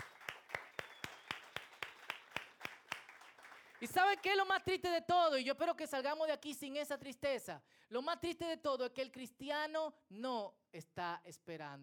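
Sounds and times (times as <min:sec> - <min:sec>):
scattered applause and crowd noise: 0:00.0 - 0:04.0
congregation clapping in steady unison: 0:00.0 - 0:04.6
speech: 0:03.8 - 0:11.8.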